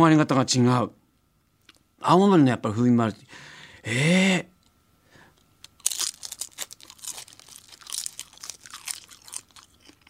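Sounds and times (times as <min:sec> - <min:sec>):
speech: 0:00.0 - 0:01.0, 0:02.0 - 0:04.5
high-grade dried seaweed nori from Aomori being chewed: 0:05.6 - 0:10.0.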